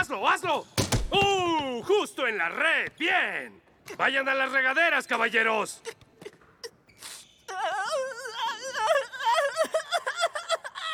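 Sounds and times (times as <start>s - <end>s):
speech: 0.2s - 6.0s
person crying loudly on a sports court: 7.5s - 10.9s.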